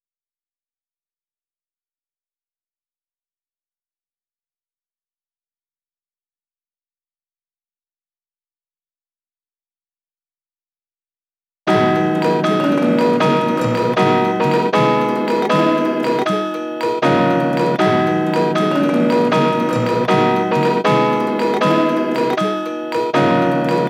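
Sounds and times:
bells melody loop in D sharp minor: 0:11.7 - 0:23.8.

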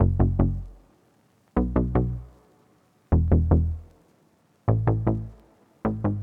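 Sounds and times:
happy bass melody loop at 154 BPM in E major: 0:00.0 - 0:00.8, 0:01.6 - 0:02.3, 0:03.1 - 0:03.9, 0:04.7 - 0:06.2.

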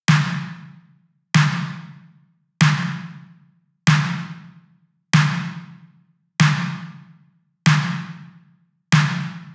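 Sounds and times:
synthwave snare drum: 0:00.1 - 0:00.8, 0:01.4 - 0:02.0, 0:02.6 - 0:03.2, 0:03.9 - 0:04.5, 0:05.2 - 0:05.7, 0:06.4 - 0:07.1, 0:07.7 - 0:08.3, 0:09.0 - 0:09.5.

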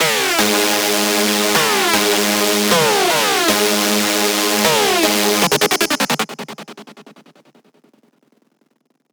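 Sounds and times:
screech music loop in G sharp minor: 0:00.0 - 0:06.2.

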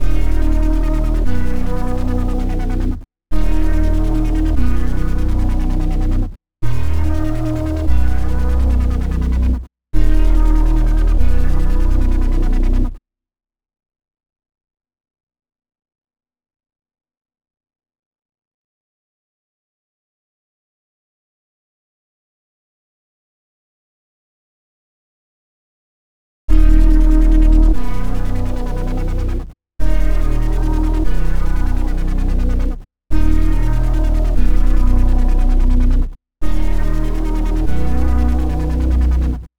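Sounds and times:
bass at 145 BPM in D# minor: 0:00.0 - 0:13.0, 0:26.5 - 0:39.5.

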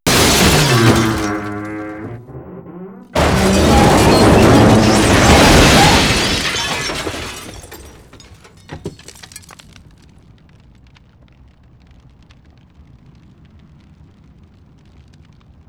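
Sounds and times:
large explosion: 0:00.1 - 0:08.0.

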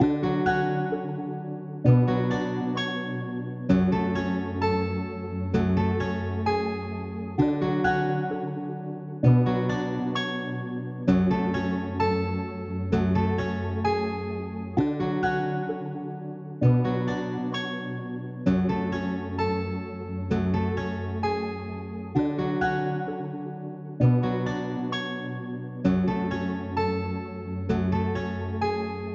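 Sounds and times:
sad guitar melody loop in F# minor: 0:00.0 - 0:29.1.

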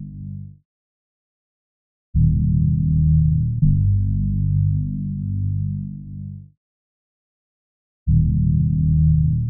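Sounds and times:
G minor bass loop: 0:02.2 - 0:06.3, 0:08.1 - 0:09.4.

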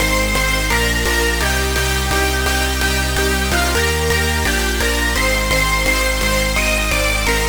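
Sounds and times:
progressive house drop loop in C minor with supersaw synths: 0:00.0 - 0:07.4
supersaw synth: 0:00.0 - 0:07.4.

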